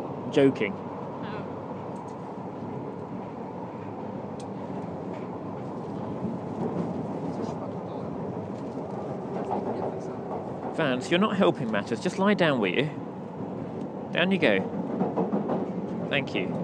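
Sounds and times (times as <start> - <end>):
London Underground train running toward Knightsbridge station: 0.0 - 16.6
speech: 0.3 - 0.9, 10.8 - 13.0, 14.1 - 14.8, 16.1 - 16.6
faint indistinct voices: 5.8 - 10.8.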